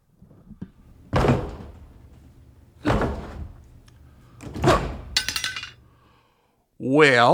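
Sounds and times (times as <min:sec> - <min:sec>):
jammed door yanked and shoved, heavy thuds: 0:00.8 - 0:06.0.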